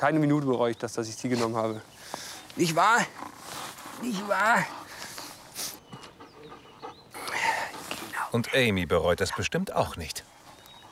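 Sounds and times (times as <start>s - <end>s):
speech: 0.0s - 3.4s, 4.0s - 4.8s, 8.3s - 10.3s
dog sniffing: 1.3s - 8.5s
dog panting: 2.6s - 8.8s, 10.2s - 10.9s.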